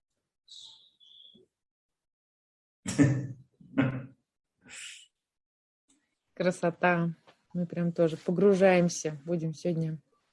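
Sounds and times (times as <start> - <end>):
small birds chirping, possibly parakeets: 0.5 - 1.4
speech: 3.0 - 3.9, 6.4 - 10.1.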